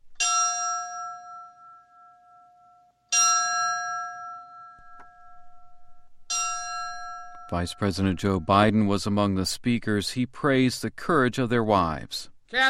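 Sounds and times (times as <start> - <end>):
fire bell struck at a firefighters' memorial service: 0.2 - 8.4
speech: 7.5 - 12.6.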